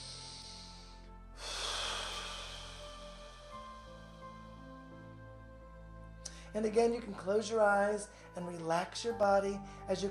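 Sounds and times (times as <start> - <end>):
deep breath during a guided meditation: 0.0 - 4.7
speech: 6.5 - 10.0.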